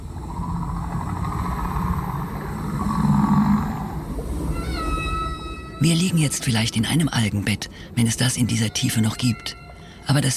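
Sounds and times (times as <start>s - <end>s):
dense murky underwater rumble: 0.0s - 5.8s
whale song: 0.0s - 7.2s, 8.4s - 10.3s
speech: 5.8s - 10.3s.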